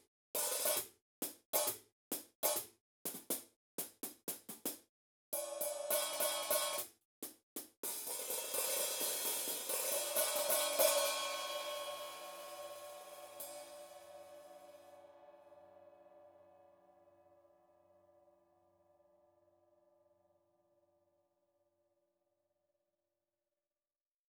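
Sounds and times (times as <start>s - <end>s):
brushes on 13 inch hi-hats of acoustic drums: 0.6s - 14.6s.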